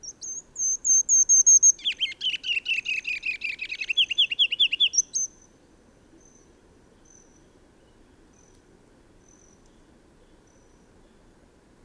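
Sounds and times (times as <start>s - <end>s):
bird singing bright down-slurred chirped notes: 0.0s - 5.4s.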